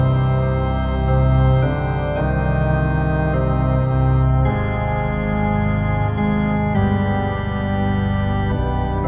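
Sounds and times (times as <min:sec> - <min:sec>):
organ: 0:00.0 - 0:09.0.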